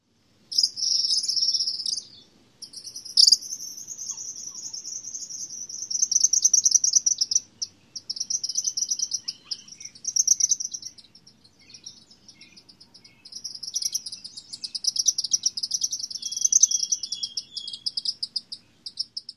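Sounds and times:
tropical kingbird calling: 0.5 - 19.3.

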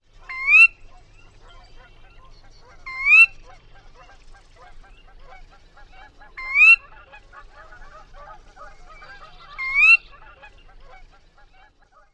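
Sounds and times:
Sora calling ker-wee: 0.2 - 3.6, 6.4 - 7.0, 7.6 - 11.2.

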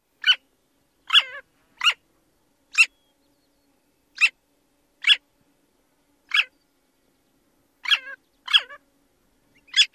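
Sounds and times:
long-tailed jaeger alarm calls: 0.2 - 0.4, 1.0 - 2.0, 2.7 - 3.2, 4.1 - 4.4, 5.0 - 5.2, 6.3 - 6.7, 7.8 - 8.9, 9.5 - 9.9.

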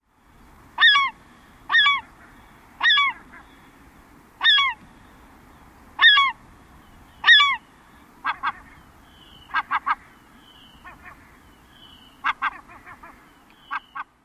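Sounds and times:
keeyer alarm calls: 0.8 - 3.7, 4.4 - 4.8, 6.0 - 7.6, 8.2 - 14.2.

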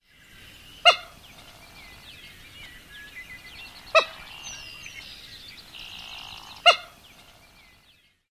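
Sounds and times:
resonant keek calls: 0.8 - 1.5, 3.7 - 5.0, 5.8 - 7.0.

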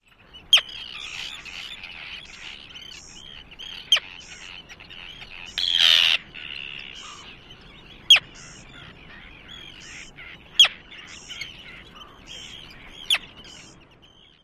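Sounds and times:
Arctic tern kip and keeyar calls: 0.1 - 14.4.

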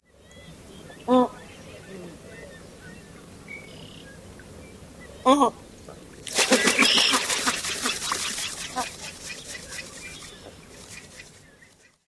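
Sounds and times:
White Ibis calls: 0.0 - 12.0
White Ibis wings in flight: 6.3 - 12.0.

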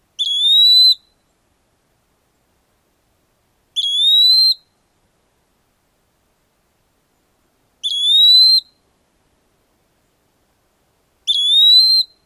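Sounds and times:
Eastern Wood-Pewee purree call: 0.2 - 1.2, 3.8 - 4.7, 7.8 - 8.8, 11.3 - 12.2.

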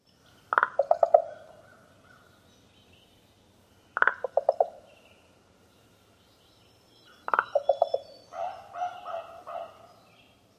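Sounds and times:
common raven popping calls: 0.5 - 2.4, 3.9 - 4.9, 7.1 - 9.9.

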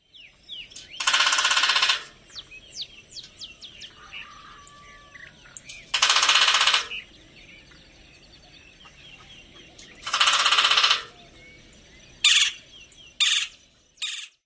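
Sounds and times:
Golden-fronted Woodpecker drumming on metal: 0.7 - 2.4, 5.7 - 7.1, 9.8 - 11.2.

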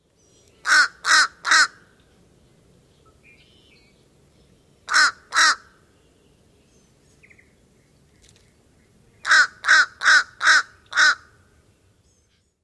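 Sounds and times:
Fish Crow cawing: 0.6 - 1.8, 4.9 - 5.8, 9.2 - 11.4.

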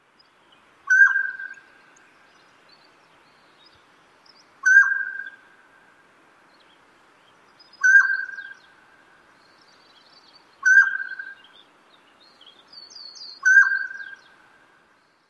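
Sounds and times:
mountain quail song: 0.9 - 1.7, 4.6 - 5.4, 7.7 - 8.8, 10.4 - 11.5, 12.6 - 14.4.

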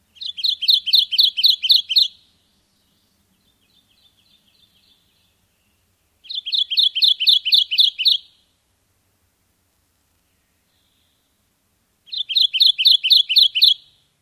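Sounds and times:
Kentucky warbler singing: 0.0 - 8.5, 10.2 - 11.5, 12.1 - 14.1.

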